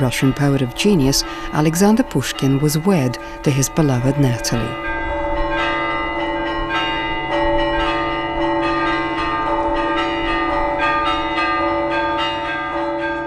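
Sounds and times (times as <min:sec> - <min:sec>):
speech: 0:00.0 - 0:04.9
church bells pealing from several towers: 0:00.0 - 0:13.2.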